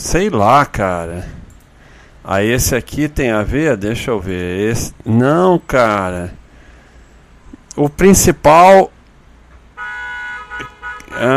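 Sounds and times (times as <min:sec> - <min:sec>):
speech: 0:00.1 - 0:01.4, 0:02.2 - 0:06.4, 0:07.8 - 0:08.9, 0:11.1 - 0:11.3
car horn honking: 0:09.7 - 0:11.3.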